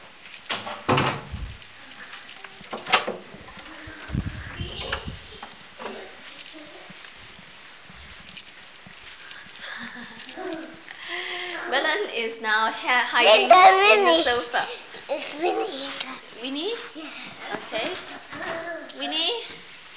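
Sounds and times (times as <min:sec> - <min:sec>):
door banging shut: 0:00.5 - 0:01.4, 0:02.7 - 0:03.4
shuffling: 0:01.3 - 0:10.9, 0:11.7 - 0:19.9
speech: 0:12.4 - 0:14.8, 0:16.4 - 0:16.9.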